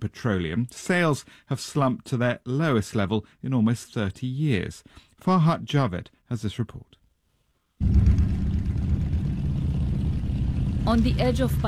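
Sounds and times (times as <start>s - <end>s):
speech: 0.0s - 7.0s, 7.8s - 8.0s, 10.8s - 11.6s
thousands of motorbikes of fuel smugglers revving in the desert: 7.8s - 11.6s.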